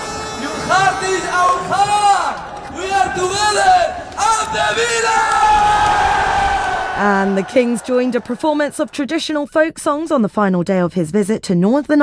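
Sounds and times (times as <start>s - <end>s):
large crowd cheering and shouting at an open-top bus parade through a city: 0.6s - 9.1s
speech: 4.5s - 5.6s, 7.0s - 12.0s.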